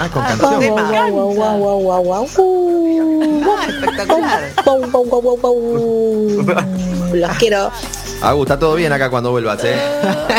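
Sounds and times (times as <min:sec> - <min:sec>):
speech: 0:00.0 - 0:10.3
laughter: 0:03.2 - 0:05.0, 0:05.7 - 0:07.0, 0:09.7 - 0:10.3
person imitating dog with yapping barks and wavering howls: 0:05.6 - 0:07.1.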